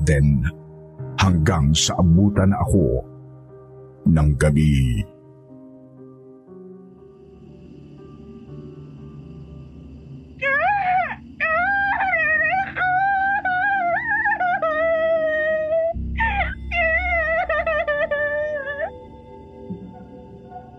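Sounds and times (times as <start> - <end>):
speech: 0.0 - 0.6, 1.2 - 3.1, 4.0 - 5.1
child crying in long high wavering wails: 10.4 - 19.0.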